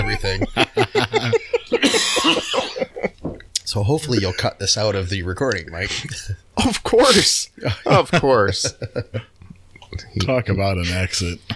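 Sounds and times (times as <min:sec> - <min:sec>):
laughter: 0:00.0 - 0:03.4, 0:04.0 - 0:09.3
speech: 0:00.1 - 0:01.4, 0:03.7 - 0:09.2, 0:10.1 - 0:11.5
harsh rasping coughing fit: 0:01.8 - 0:02.9.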